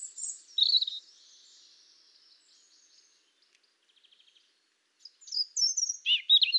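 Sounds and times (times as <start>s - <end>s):
European robin Erithacus rubecula singing: 0.0s - 6.5s.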